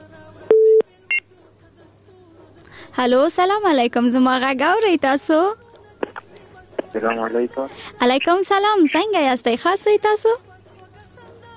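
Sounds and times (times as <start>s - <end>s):
touch-tone telephone dialing beeps: 0.5s - 1.2s
speech: 2.9s - 5.6s, 7.0s - 10.5s.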